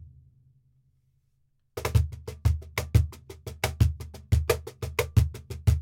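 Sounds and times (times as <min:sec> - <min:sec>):
cajon playing flamenco: 0:01.8 - 0:05.8.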